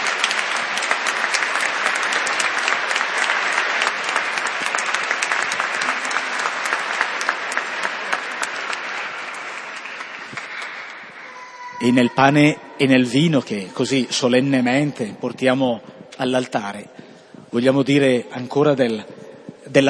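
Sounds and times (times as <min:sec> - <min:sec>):
audience applauding to welcome young children: 0:00.0 - 0:11.4
speech: 0:11.9 - 0:19.1.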